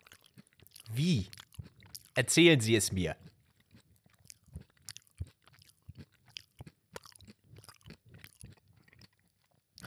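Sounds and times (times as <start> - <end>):
lip smacking while chewing: 0.0 - 2.2, 3.2 - 9.8
speech: 0.9 - 1.4, 2.2 - 3.2.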